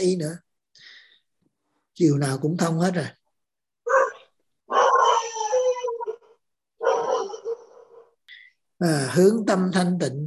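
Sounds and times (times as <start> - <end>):
speech: 0.0 - 0.4, 2.0 - 3.2, 8.8 - 10.2
dog howling in wavering bursts: 3.8 - 8.1.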